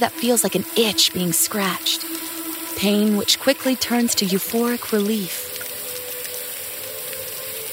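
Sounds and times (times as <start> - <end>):
speech: 0.0 - 5.5
faint tonal hum: 0.0 - 7.7
hot shower water spraying: 0.0 - 7.7.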